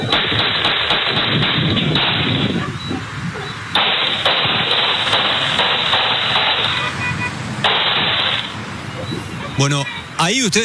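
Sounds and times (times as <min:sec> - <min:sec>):
sharp gunshots from an attack on security camera footage: 0:00.0 - 0:09.4
steady hiss of noise: 0:00.0 - 0:10.6
speech: 0:09.6 - 0:10.6.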